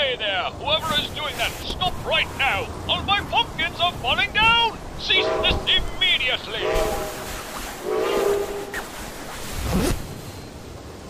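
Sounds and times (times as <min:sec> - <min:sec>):
approaching train rumble in a video game: 0:00.0 - 0:11.0
speech: 0:00.1 - 0:07.2
train horn blasts: 0:05.1 - 0:05.8, 0:06.6 - 0:08.8.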